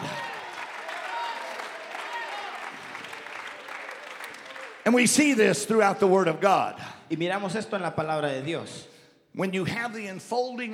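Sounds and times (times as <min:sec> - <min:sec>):
audience clapping hands: 0:00.0 - 0:05.8
speech: 0:04.9 - 0:10.7.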